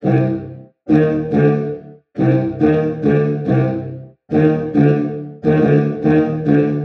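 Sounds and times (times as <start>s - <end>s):
brass melody loop at 140 BPM: 0.0s - 6.8s.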